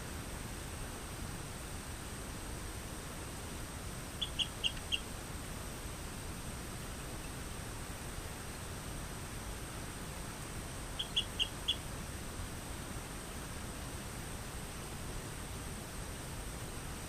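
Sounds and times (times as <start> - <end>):
background hiss: 0.0 - 17.0
Rio Grande chirping frog Eleutherodactylus cystignathoides calling: 4.2 - 5.1, 11.0 - 11.8.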